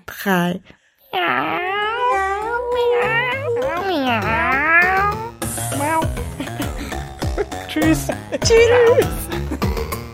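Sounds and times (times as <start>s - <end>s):
speech: 0.2s - 1.8s, 3.8s - 4.6s, 7.8s - 9.7s
several people meowing together like cats: 1.2s - 6.6s, 8.4s - 9.3s
burst of laughter: 6.0s - 9.8s.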